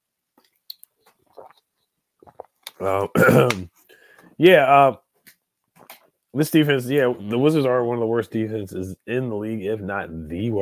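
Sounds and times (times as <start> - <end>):
person sipping water: 0.4 - 4.3
gulps: 2.2 - 3.7
speech: 2.8 - 3.8, 4.4 - 5.0, 6.3 - 10.6.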